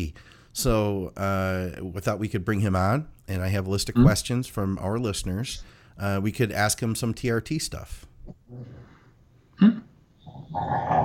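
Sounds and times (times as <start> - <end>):
speech: 0.0 - 8.9, 10.5 - 11.0
dog growling in low rough rumbles: 10.2 - 11.0.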